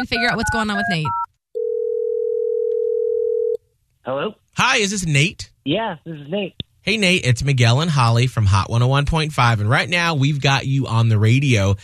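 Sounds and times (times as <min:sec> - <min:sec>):
speech: 0:00.0 - 0:01.2, 0:04.0 - 0:11.8
telephone dial tone while placing a call: 0:01.1 - 0:03.6.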